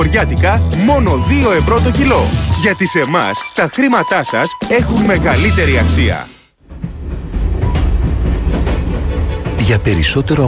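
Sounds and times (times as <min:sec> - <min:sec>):
speech: 0:00.1 - 0:06.4, 0:09.7 - 0:10.4
electric urban train rumbling along the tracks with clatter and hiss: 0:06.6 - 0:10.4.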